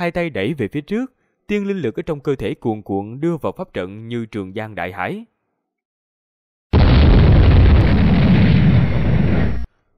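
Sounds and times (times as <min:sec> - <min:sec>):
speech: 0:00.0 - 0:05.3
explosions rumbling inside a sealed chamber: 0:06.8 - 0:09.7.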